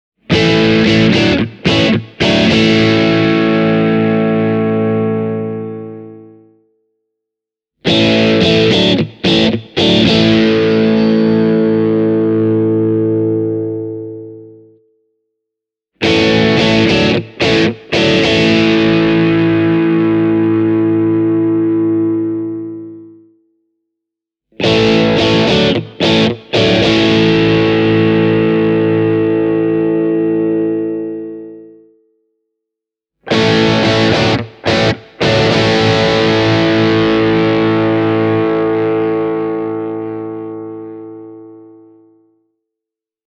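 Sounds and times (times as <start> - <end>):
Tokai TST 50 guitar with dirty tone: 0.3 - 6.5, 7.8 - 14.8, 16.0 - 23.3, 24.6 - 31.9, 33.3 - 42.2.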